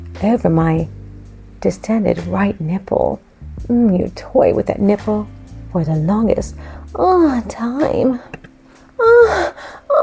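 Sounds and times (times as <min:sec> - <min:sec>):
speech: 0:00.2 - 0:01.0, 0:01.6 - 0:08.4
woman's sharp voiced gasp of surprise: 0:06.6 - 0:06.9, 0:08.2 - 0:10.0.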